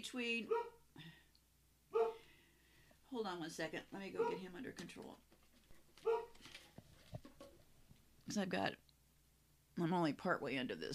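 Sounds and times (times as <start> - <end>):
speech: 0.0 - 1.2, 3.1 - 5.3, 8.3 - 8.8, 9.8 - 10.9
dog barking: 0.5 - 0.8, 1.9 - 2.3, 4.2 - 4.5, 6.0 - 6.4.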